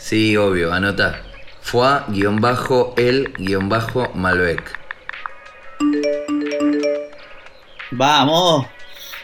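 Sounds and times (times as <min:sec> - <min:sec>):
speech: 0:00.1 - 0:04.8, 0:07.9 - 0:08.8
phone message notification chime: 0:05.8 - 0:07.3.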